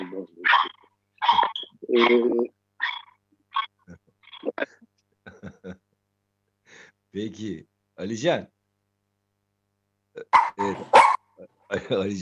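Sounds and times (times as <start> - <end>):
dog barking in short sharp bursts: 0.4 - 1.6, 10.3 - 11.3
speech: 1.9 - 2.6, 7.2 - 8.6, 10.6 - 11.0, 11.7 - 12.2.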